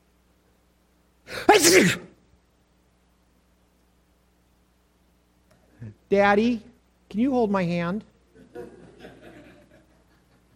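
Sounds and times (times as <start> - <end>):
high-pitched sneeze: 1.3 - 2.2
speech: 1.6 - 2.1, 6.1 - 8.1
laughter: 8.4 - 10.5.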